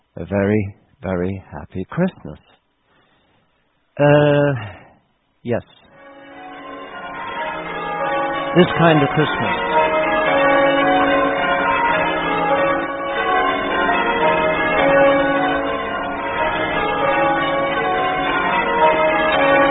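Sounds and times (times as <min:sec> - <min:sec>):
speech: 0:00.2 - 0:02.6, 0:04.0 - 0:04.8, 0:05.4 - 0:05.8, 0:08.5 - 0:09.8
church bells pealing: 0:05.9 - 0:19.6.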